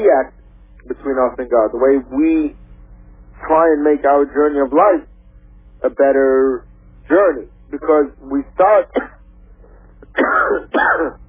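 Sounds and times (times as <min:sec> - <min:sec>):
speech: 0:00.0 - 0:00.4, 0:01.0 - 0:02.6, 0:03.4 - 0:05.1, 0:05.8 - 0:09.2, 0:10.2 - 0:11.2
person with a cold coughing: 0:08.9 - 0:09.2, 0:10.0 - 0:11.2.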